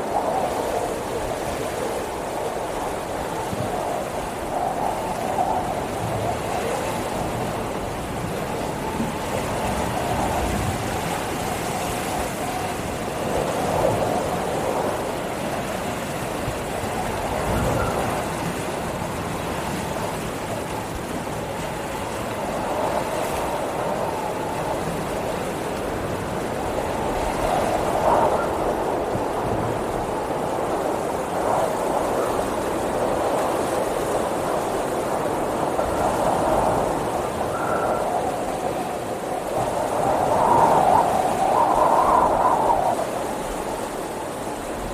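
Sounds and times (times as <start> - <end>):
wind roaring through a storm: 0.0 - 44.9
faint whistling tone: 17.6 - 18.2, 37.5 - 38.4.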